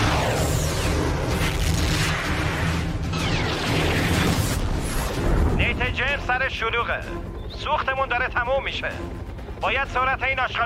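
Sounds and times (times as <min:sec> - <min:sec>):
missile firing: 0:00.0 - 0:05.4
speech: 0:06.3 - 0:10.6.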